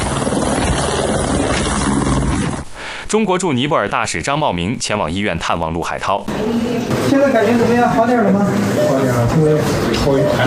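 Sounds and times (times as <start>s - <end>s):
helicopter transferring a rescued worker to a hospital in Nepal: 0.0s - 2.6s
speech: 3.1s - 10.4s.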